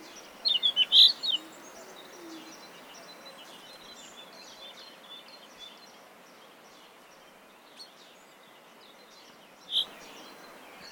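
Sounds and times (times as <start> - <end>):
common chaffinch Fringilla coelebs calls: 0.0 - 3.7, 9.7 - 10.8.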